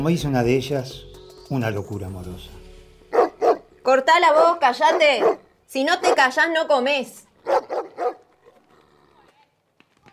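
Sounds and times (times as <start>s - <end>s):
speech: 0.0s - 2.6s, 3.9s - 7.8s
dog barking: 3.1s - 3.7s, 4.4s - 6.2s, 7.4s - 8.3s.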